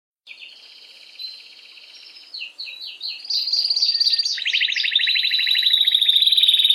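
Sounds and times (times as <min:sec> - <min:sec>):
Belgian mosaic canary singing: 0:00.3 - 0:06.7.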